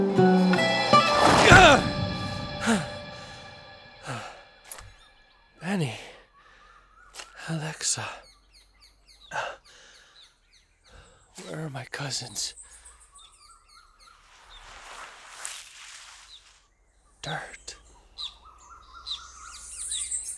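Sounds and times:
soft rushing noise: 0.2s - 3.9s, 14.2s - 16.6s
birds chirping and singing: 4.8s - 15.1s, 16.4s - 20.3s
speech: 12.2s - 12.7s.

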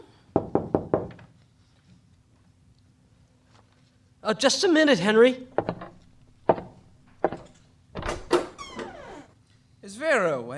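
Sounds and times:
firm knocking on a wooden door: 0.4s - 1.2s, 5.6s - 8.6s
speech: 4.3s - 5.5s.

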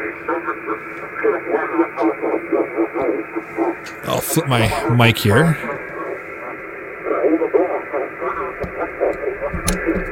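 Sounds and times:
HF radio static on the 40-meter band: 0.0s - 10.0s
garbled voice-like warbling in radio static: 4.0s - 5.8s
speech: 4.1s - 5.7s.

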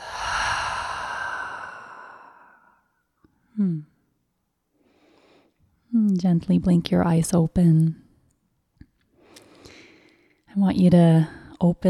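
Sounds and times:
deep breath exhaled through an open mouth during a guided breathing exercise: 0.0s - 2.9s
speech: 6.2s - 8.0s, 10.6s - 11.8s.

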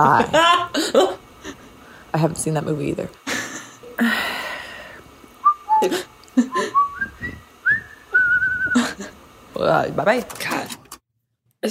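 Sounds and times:
speech: 0.0s - 1.2s, 2.1s - 3.2s, 4.0s - 4.3s, 5.8s - 6.1s, 9.6s - 10.8s
person whistling a short melody: 5.4s - 8.8s.

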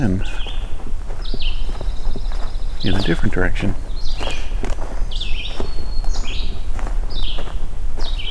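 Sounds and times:
speech: 0.0s - 0.5s, 2.8s - 3.9s
footsteps crunching and rustling as the recordist walks: 0.0s - 8.2s
red-eyed vireo singing short clipped phrases: 0.0s - 8.2s.

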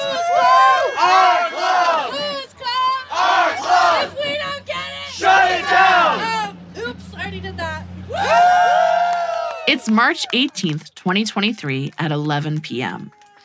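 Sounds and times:
crowd cheering and shouting at outdoor party outside a dive bar in North Hollywood: 0.0s - 6.6s, 8.1s - 10.9s
speech: 9.7s - 13.2s.

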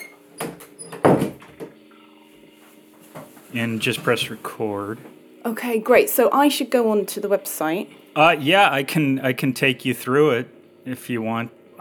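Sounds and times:
door being pushed shut with scraping slide and thump: 0.0s - 1.7s
speech: 3.5s - 11.7s.

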